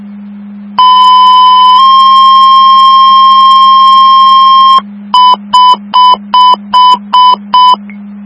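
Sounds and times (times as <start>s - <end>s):
constant low hum: 0.0s - 8.2s
quick evenly spaced pager beeps: 0.8s - 7.8s
two-tone emergency dispatch pager tones for an EMS call in Mercer County: 0.8s - 7.8s.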